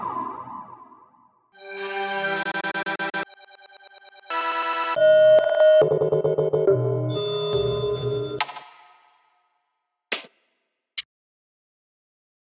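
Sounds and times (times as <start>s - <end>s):
dubstep music samples: 1.6s - 8.5s.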